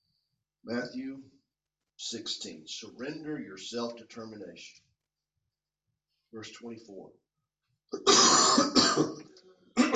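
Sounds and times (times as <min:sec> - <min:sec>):
speech: 0:00.6 - 0:01.3, 0:02.0 - 0:04.8, 0:06.3 - 0:07.2, 0:07.9 - 0:09.3
throat clearing: 0:07.9 - 0:09.9
person with a chesty cough coughing harshly: 0:08.0 - 0:09.9.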